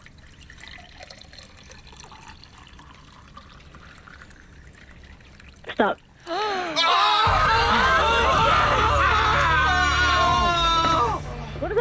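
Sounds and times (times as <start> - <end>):
liquid pouring into a container: 0.0 - 6.3
speech: 5.8 - 7.0
laughter: 7.2 - 11.2.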